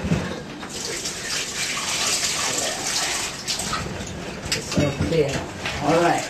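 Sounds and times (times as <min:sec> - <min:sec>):
sloshing of food being swished and rinsed under running water: 0:00.0 - 0:06.2
running water splashing into a basin: 0:00.7 - 0:04.2, 0:05.7 - 0:06.2
speech: 0:05.2 - 0:06.2.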